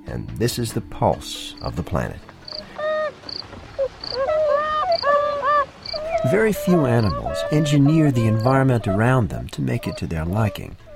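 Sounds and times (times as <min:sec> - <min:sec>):
speech: 0:00.1 - 0:02.3, 0:06.2 - 0:10.8
beavers whimpering and whining: 0:02.4 - 0:10.9
squeaky beaver chirps: 0:02.5 - 0:10.9.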